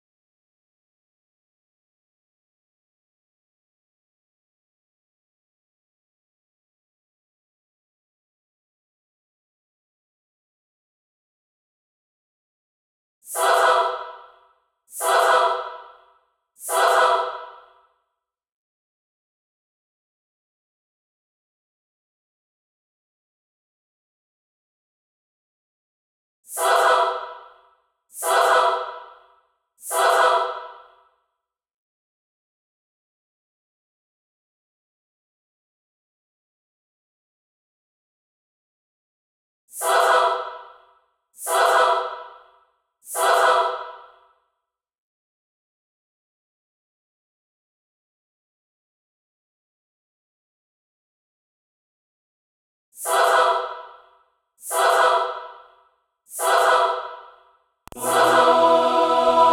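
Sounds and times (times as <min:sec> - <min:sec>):
layered choir singing: 0:13.3 - 0:16.0, 0:16.6 - 0:17.8, 0:26.5 - 0:27.5, 0:28.2 - 0:29.2, 0:29.8 - 0:30.8, 0:39.8 - 0:40.6, 0:41.4 - 0:42.3, 0:43.1 - 0:44.0, 0:53.0 - 0:53.8, 0:54.7 - 0:55.6, 0:56.4 - 0:57.2, 0:57.9 - 0:59.5.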